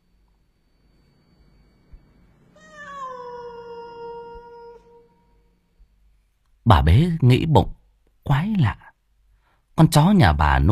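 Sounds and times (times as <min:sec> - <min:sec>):
faint noise: 0:00.0 - 0:10.7
cat in a yard meowing plaintively: 0:02.6 - 0:05.5
speech: 0:06.7 - 0:08.8, 0:09.8 - 0:10.7.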